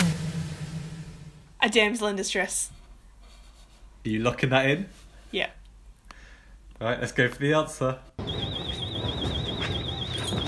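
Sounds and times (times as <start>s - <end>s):
speech: 1.6s - 2.8s, 4.0s - 5.6s, 6.8s - 8.1s
high-pitched warbling alarm: 8.2s - 10.4s.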